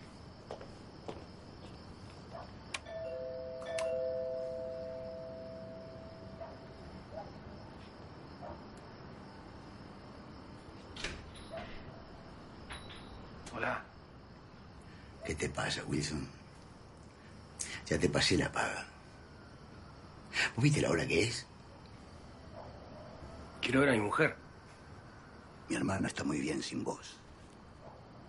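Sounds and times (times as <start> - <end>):
steady chorus of crickets: 0.0 - 28.2
two-note doorbell chime at a house: 2.9 - 6.4
speech: 15.3 - 16.4, 17.9 - 18.9, 20.6 - 21.5, 23.7 - 24.4, 25.7 - 27.2.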